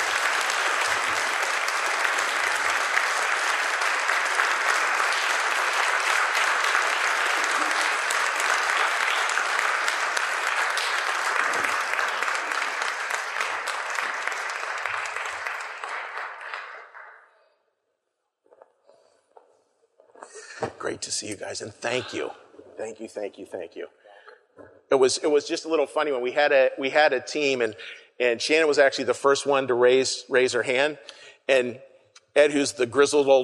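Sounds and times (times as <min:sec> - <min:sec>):
room full of people applauding speakers: 0:00.0 - 0:17.2
speech: 0:21.0 - 0:24.0, 0:24.9 - 0:33.4.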